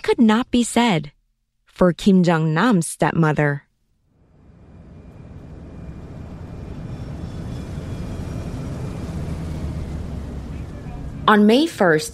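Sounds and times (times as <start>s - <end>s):
speech: 0.1s - 1.2s, 1.8s - 3.6s, 11.3s - 12.1s
airplane landing with heavy jet roar: 4.1s - 12.1s.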